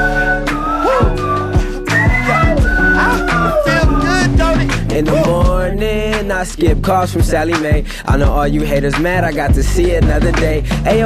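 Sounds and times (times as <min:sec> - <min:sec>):
person whistling a gliding melody: 0:00.0 - 0:05.8
musical backing with steady bass and chords: 0:00.0 - 0:11.0
speech: 0:06.4 - 0:11.0.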